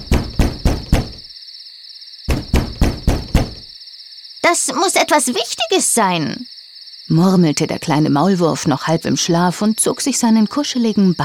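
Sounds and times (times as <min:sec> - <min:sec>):
loud knocking on a door in the middle of the night: 0:00.0 - 0:01.2, 0:02.3 - 0:03.7
speech: 0:04.4 - 0:11.2.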